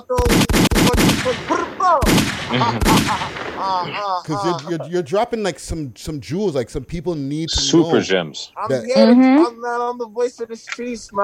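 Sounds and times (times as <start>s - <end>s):
gunshot sound effects: 0.0s - 3.8s
laughter: 1.2s - 5.3s
speech: 1.3s - 11.2s.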